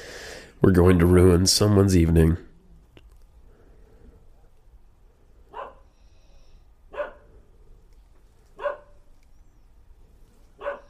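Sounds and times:
speech: 0.6 - 2.5
dog barking: 5.5 - 5.9, 6.9 - 7.3, 8.6 - 9.0, 10.6 - 10.8.

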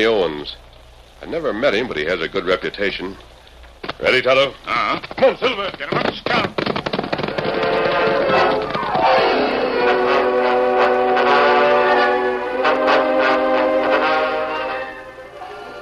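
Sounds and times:
speech: 0.0 - 3.3, 4.0 - 6.6
rumbling noisy background: 0.0 - 15.7
steam locomotive whistle wailing on a work train in drizzling rain: 7.5 - 15.7.

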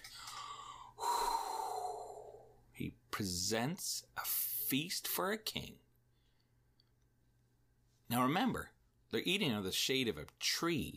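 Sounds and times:
voice imitating labored breathing of a man worn out from preparing a meal: 0.0 - 2.6
speech: 2.8 - 5.8, 8.1 - 10.9.

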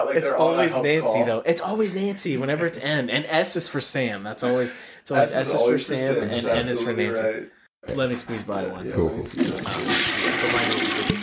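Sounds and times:
speech: 0.0 - 11.2
toilet flushing: 9.3 - 11.2.

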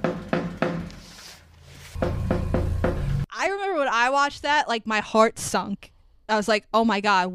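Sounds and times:
firm knocks on a door in a control room: 0.0 - 0.9, 2.0 - 3.2
speech: 3.9 - 7.3.

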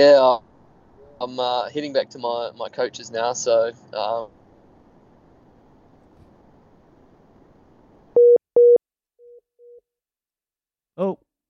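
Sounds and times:
speech: 0.0 - 0.5, 1.2 - 4.4
dropped phone call busy tone beeps: 8.2 - 9.8.

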